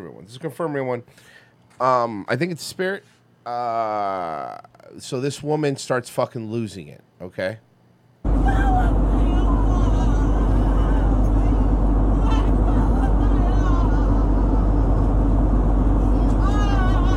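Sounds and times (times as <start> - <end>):
speech: 0.2 - 7.7, 8.4 - 8.7
airplane cabin engine noise: 8.3 - 17.1.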